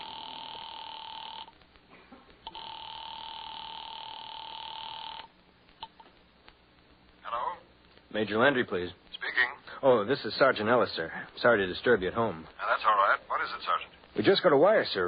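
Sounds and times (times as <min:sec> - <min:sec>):
telephone ringing on the line after a number has been dialed: 0:00.0 - 0:01.5, 0:02.5 - 0:05.3
speech: 0:08.2 - 0:09.2, 0:09.8 - 0:15.0.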